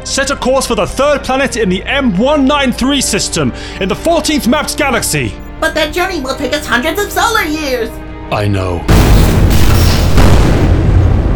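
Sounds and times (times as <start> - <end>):
speech: 0.1 - 9.1
loud dense explosion boom: 8.9 - 11.3
spaceship weapons fire: 8.9 - 11.3.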